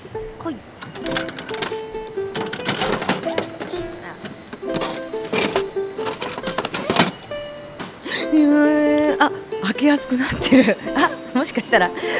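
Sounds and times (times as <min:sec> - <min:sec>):
speech: 0:00.2 - 0:01.2, 0:09.8 - 0:12.1
capsule toy vending machine crank turning with ratcheting clicks: 0:00.8 - 0:10.1
faint steady tone: 0:03.4 - 0:12.1.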